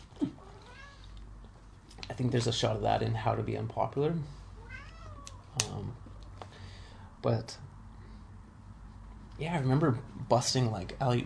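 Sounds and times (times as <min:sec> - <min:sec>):
female domestic cat meowing: 0:00.4 - 0:01.1, 0:04.6 - 0:05.6
speech: 0:02.2 - 0:04.4, 0:07.2 - 0:07.7, 0:09.4 - 0:11.2.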